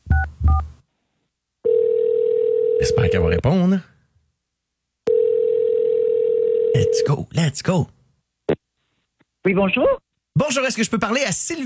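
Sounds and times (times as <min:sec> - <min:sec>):
steady continuous telephone tone: 0:01.6 - 0:03.2, 0:05.1 - 0:07.0
speech: 0:02.8 - 0:03.9, 0:06.9 - 0:08.0, 0:09.4 - 0:11.6.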